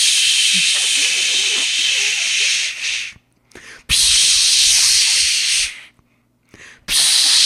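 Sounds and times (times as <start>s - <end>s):
voice imitating a long-nozzle spray can spraying into a bee nest: 0.0s - 3.2s, 3.9s - 5.9s, 6.8s - 7.4s.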